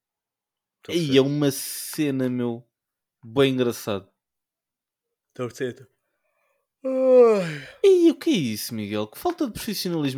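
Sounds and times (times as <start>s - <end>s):
speech: 0.8s - 4.1s, 5.4s - 5.9s, 6.8s - 10.1s
person yawning: 6.9s - 7.9s.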